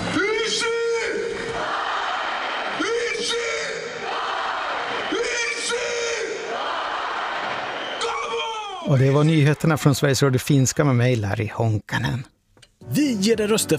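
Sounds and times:
huge stadium crowd cheering: 0:00.0 - 0:11.3
stadium crowd chanting a shouted phrase in unison: 0:01.4 - 0:02.8, 0:03.8 - 0:05.2, 0:06.2 - 0:07.9
speech: 0:08.9 - 0:12.3, 0:12.9 - 0:13.7.

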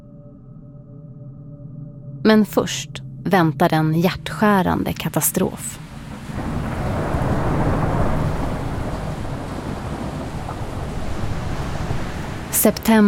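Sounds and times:
speech: 0:02.2 - 0:05.9, 0:12.6 - 0:13.0
rushing floodwater in a hurricane: 0:05.2 - 0:13.0
hurricane storm wind roaring: 0:05.5 - 0:13.0.

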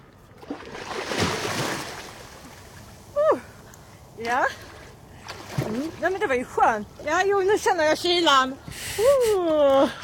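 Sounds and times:
water splashing around a person jumping into warm water to bathe: 0:00.4 - 0:03.3, 0:04.2 - 0:07.6
speech: 0:04.2 - 0:04.7, 0:05.7 - 0:10.0.

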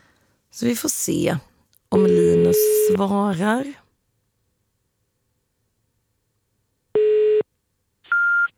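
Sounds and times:
speech: 0:00.6 - 0:03.8
old-fashioned telephone beeps while placing a call: 0:02.0 - 0:03.0, 0:08.1 - 0:08.5.

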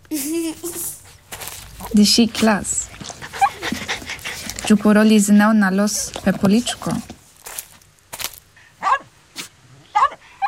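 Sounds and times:
speech: 0:02.0 - 0:02.9, 0:04.7 - 0:07.1
happy small dog yapping: 0:03.3 - 0:04.2.

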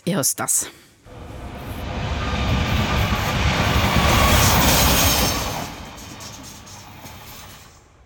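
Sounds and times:
speech: 0:00.1 - 0:00.8
train roaring past at high speed: 0:01.1 - 0:08.0.

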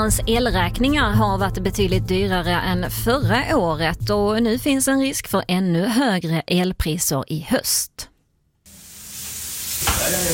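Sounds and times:
speech: 0:00.0 - 0:08.1
food frying in a hot pan in a restaurant kitchen: 0:08.7 - 0:10.3.

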